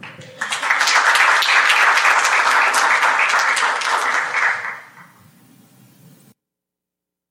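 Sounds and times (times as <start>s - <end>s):
sustained applause from a sizeable audience: 0.0s - 5.2s.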